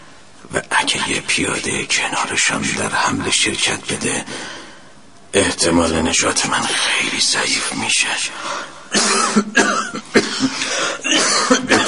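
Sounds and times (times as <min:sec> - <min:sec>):
speech: 0:00.4 - 0:04.7, 0:05.3 - 0:09.7
person coughing in harsh rasping bursts: 0:08.9 - 0:11.8
throat clearing: 0:09.0 - 0:11.8.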